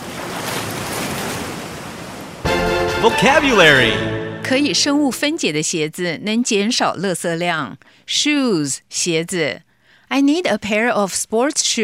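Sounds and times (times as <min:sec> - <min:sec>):
ocean waves washing with a broadband roar of surf: 0:00.0 - 0:05.0
speech: 0:03.0 - 0:11.8.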